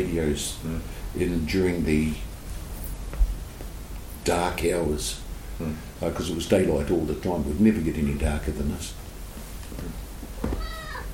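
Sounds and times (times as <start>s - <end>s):
speech: 0.0s - 2.3s, 4.2s - 9.0s
soft rustling: 1.5s - 4.3s, 9.2s - 11.1s
cat meowing: 10.4s - 11.1s.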